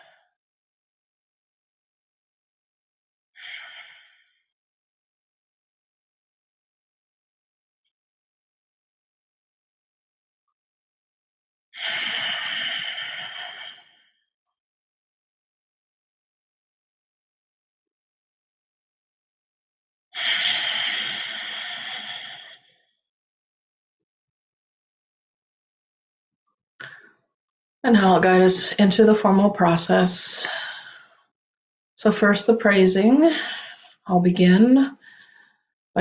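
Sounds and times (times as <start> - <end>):
slow deep breaths before a guided meditation: 3.4 - 4.6, 11.8 - 14.3, 20.2 - 22.9, 30.4 - 31.4, 33.3 - 34.0, 35.0 - 35.8
speech: 27.8 - 30.6, 32.0 - 35.0.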